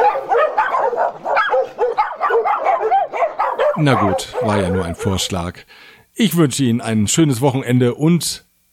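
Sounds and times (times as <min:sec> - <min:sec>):
several neighbourhood dogs barking and yipping: 0:00.0 - 0:05.4
speech: 0:03.8 - 0:08.5.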